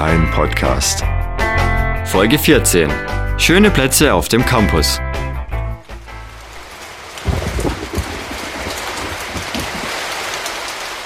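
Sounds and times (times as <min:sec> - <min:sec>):
speech: 0:00.0 - 0:01.1, 0:02.1 - 0:05.1
steady rain pouring down: 0:05.8 - 0:11.0
gusting wind: 0:06.4 - 0:11.0.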